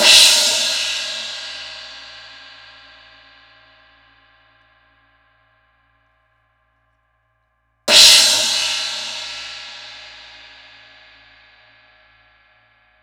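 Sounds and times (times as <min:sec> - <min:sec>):
crash cymbal: 0:00.0 - 0:04.5, 0:07.9 - 0:12.8.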